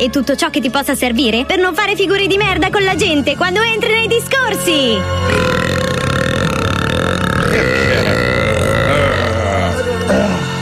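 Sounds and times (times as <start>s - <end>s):
speech: 0.0s - 5.8s
long loud deep-voiced burp: 5.2s - 10.6s.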